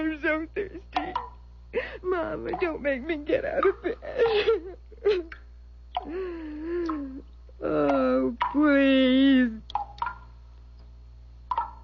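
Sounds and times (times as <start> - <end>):
speech: 0.0 - 1.0, 2.0 - 5.3
low steady hum: 0.0 - 11.8
water drops falling off a big leaf: 1.0 - 1.4, 2.5 - 2.8, 5.3 - 6.2, 9.7 - 10.3, 11.5 - 11.8.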